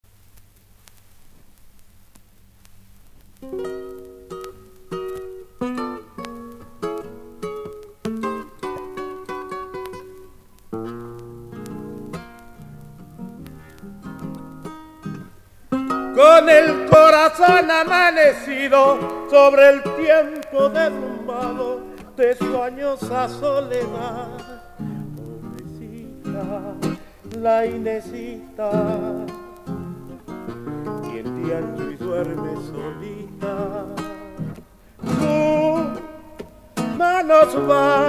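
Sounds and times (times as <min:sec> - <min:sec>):
zamba guitar: 0:00.0 - 0:38.0
person singing zamba: 0:15.9 - 0:38.0.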